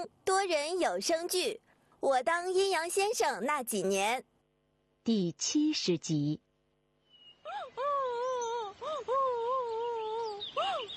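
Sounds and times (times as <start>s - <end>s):
speech: 0.0s - 4.3s, 5.0s - 6.4s
boy crying on a kang bed inside a small mud house: 7.5s - 10.9s.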